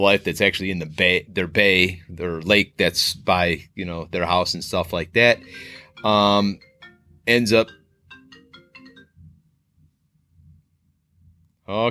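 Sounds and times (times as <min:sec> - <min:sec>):
speech: 0:00.0 - 0:07.8, 0:11.7 - 0:11.9
electronic incoming call ringtone from a laptop: 0:05.2 - 0:09.4.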